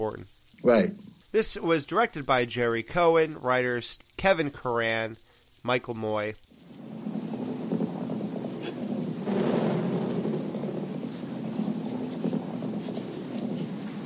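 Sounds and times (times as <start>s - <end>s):
speech: 0.0s - 6.5s
steady rain: 0.0s - 14.0s
low rumble of thunder: 6.6s - 14.0s.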